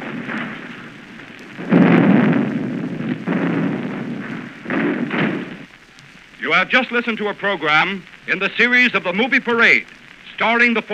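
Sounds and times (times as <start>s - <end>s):
war explosion sound effects: 0.0s - 5.7s
speech: 6.5s - 10.9s.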